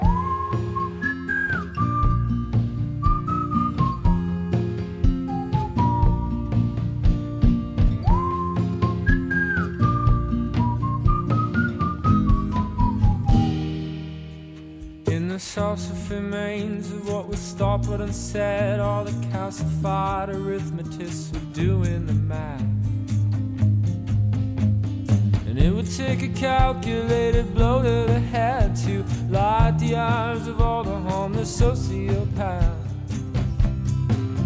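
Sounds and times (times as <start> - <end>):
melodic whistled tune in a song: 0.0 - 14.3, 25.9 - 33.5
full musical backing of a song: 0.0 - 34.4
speech: 16.1 - 22.7, 26.0 - 32.7.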